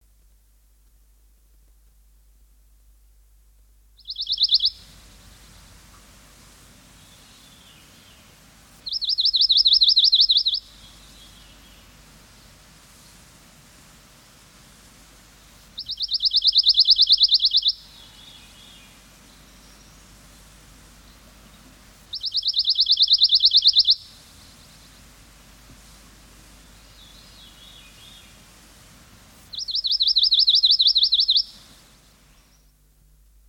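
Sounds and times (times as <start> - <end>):
pine warbler singing: 4.0 - 5.6, 7.0 - 12.6, 15.3 - 25.2, 29.5 - 32.8
songbirds singing: 4.0 - 6.1, 6.8 - 13.2, 15.2 - 25.6, 26.4 - 28.6, 29.5 - 32.8.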